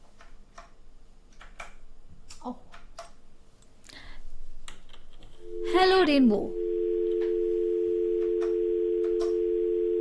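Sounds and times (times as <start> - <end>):
speech: 2.4 - 2.6, 5.8 - 6.6
telephone tone of a call not connecting: 5.4 - 10.0
faint clicks and line noise on a telephone line: 8.1 - 9.6.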